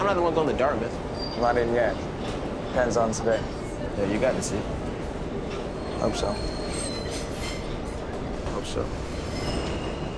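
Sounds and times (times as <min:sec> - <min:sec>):
subway train rumbling as it slows to a stop: 0:00.0 - 0:10.1
speech: 0:00.1 - 0:02.1, 0:02.7 - 0:04.9, 0:06.0 - 0:06.6, 0:08.6 - 0:09.1
thin high-pitched subway train wheel squeals: 0:01.2 - 0:02.0, 0:05.6 - 0:07.8, 0:09.0 - 0:10.1.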